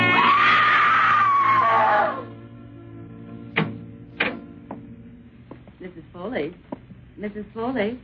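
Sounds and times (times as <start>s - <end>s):
woman screaming: 0.1s - 2.3s
sharp knocks: 3.5s - 5.7s
speech: 7.6s - 8.0s.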